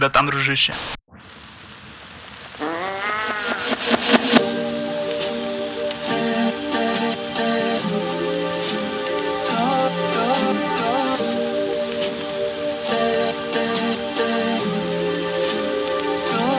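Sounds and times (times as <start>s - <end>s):
speech: 0.0s - 1.0s
steady rain: 1.2s - 16.5s
melodic music with held tones and struck notes: 4.1s - 16.5s.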